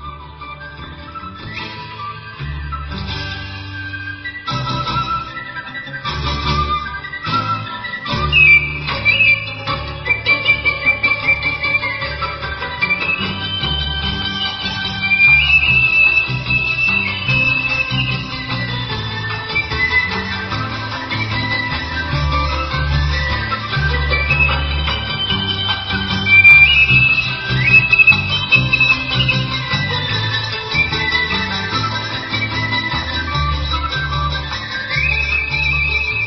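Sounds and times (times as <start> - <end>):
Vietnamese bamboo flute playing a flowing melody: 0.0 - 36.2
instrumental accompaniment: 0.0 - 36.2.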